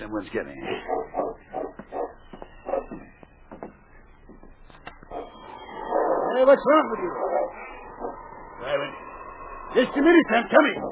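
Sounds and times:
speech: 0.0 - 1.0, 6.4 - 7.3, 9.8 - 10.8
dog barking with short yappy barks: 0.7 - 3.0, 5.1 - 6.3
dog yelping softly: 0.7 - 3.2, 4.9 - 8.6.

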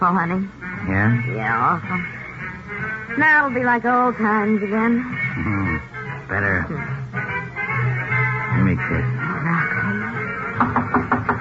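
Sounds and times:
speech: 0.0 - 7.0, 8.7 - 9.6
low hum: 0.0 - 10.6
knocking on a door: 10.6 - 11.3.

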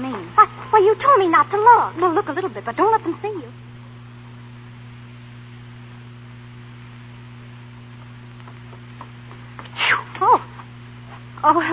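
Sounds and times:
faint steady hum: 0.0 - 11.7
speech: 0.8 - 3.6, 11.4 - 11.7
person sneezing caused by dust: 9.7 - 10.5.

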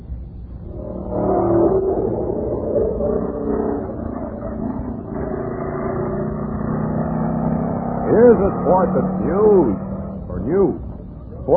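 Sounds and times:
stock car racing engines roaring at speedway: 0.6 - 11.5
speech: 8.2 - 9.9.

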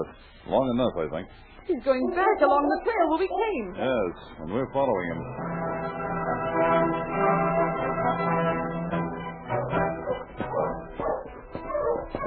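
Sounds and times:
speech: 0.0 - 8.6
husky dog barking, yipping and whimpering: 10.0 - 12.2.

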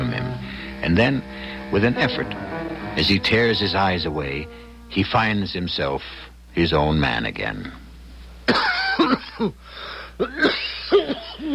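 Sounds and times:
wheezy strained breaths between coughs: 0.4 - 1.7, 9.6 - 10.2
speech: 0.8 - 7.8, 8.5 - 11.5
professor giving harsh rasping coughs: 8.5 - 9.6, 10.2 - 11.5.

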